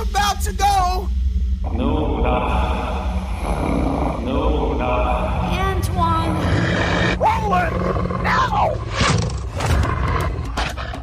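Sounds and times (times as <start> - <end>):
speech: 0.4 - 5.1
wolf breathy snarling: 3.3 - 4.3, 6.1 - 11.0
wolf growling: 3.4 - 4.3, 6.1 - 11.0.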